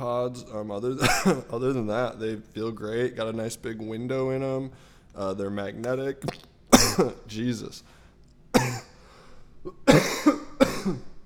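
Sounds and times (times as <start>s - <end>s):
speech: 0.0s - 8.8s
harsh coughing after vaping: 1.0s - 1.6s, 6.7s - 7.2s, 8.6s - 9.0s, 9.6s - 11.2s.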